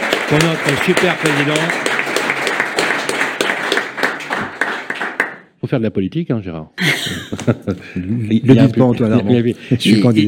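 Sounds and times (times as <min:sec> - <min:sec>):
audience applause: 0:00.0 - 0:05.5
speech: 0:00.3 - 0:01.8, 0:05.6 - 0:10.2
laughter: 0:06.8 - 0:09.8.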